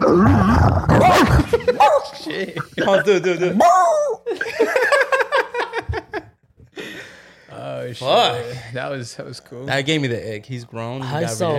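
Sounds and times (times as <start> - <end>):
speech: 0.1 - 4.5, 7.8 - 11.5
person imitating a dog with a rough growling voice: 0.8 - 2.2, 2.9 - 4.3
laughter: 1.0 - 3.6, 4.2 - 7.0.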